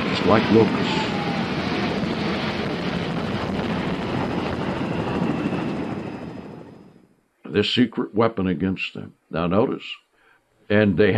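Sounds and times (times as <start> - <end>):
several helicopters flying together: 0.0 - 7.0
speech: 0.2 - 1.2, 7.6 - 10.0, 10.7 - 11.1.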